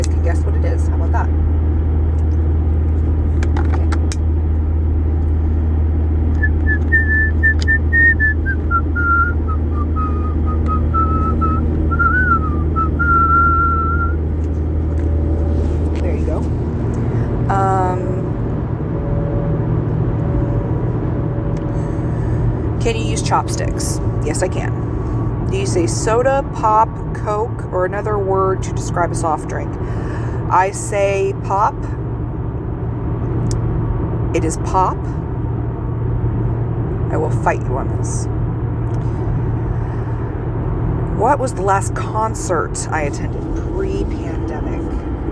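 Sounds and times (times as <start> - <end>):
low car engine rumble: 0.0 - 45.2
person whistling a slow tune from a show: 6.4 - 14.2
speech: 23.3 - 24.8, 25.8 - 29.7, 30.5 - 32.0, 34.3 - 35.2, 37.3 - 38.4, 41.2 - 44.8.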